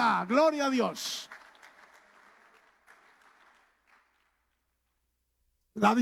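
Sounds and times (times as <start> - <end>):
speech: 0.0 - 1.3, 5.8 - 6.0
church audience applause during a worship service: 0.0 - 4.5.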